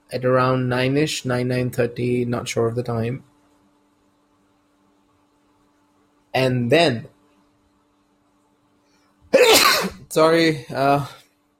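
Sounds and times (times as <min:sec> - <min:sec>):
speech: 0:00.1 - 0:03.3, 0:06.3 - 0:07.1, 0:10.1 - 0:11.2
person sneezing: 0:09.3 - 0:10.0.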